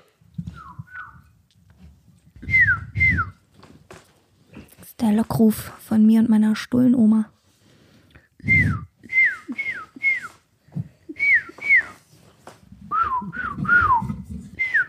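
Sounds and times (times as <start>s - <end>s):
person whistling a tune: 0.4s - 1.3s, 2.4s - 3.4s, 8.4s - 10.4s, 11.1s - 12.0s, 12.9s - 14.8s
speech: 5.0s - 7.4s.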